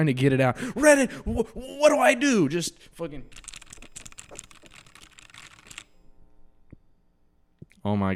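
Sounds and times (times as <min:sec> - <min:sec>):
speech: 0:00.0 - 0:03.4, 0:07.8 - 0:08.1
computer keyboard typing: 0:03.3 - 0:06.0.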